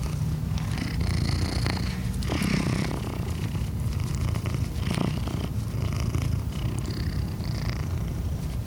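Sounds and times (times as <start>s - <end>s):
faint rustling: 0.0s - 8.6s
gray tabby cat purring: 0.0s - 8.6s.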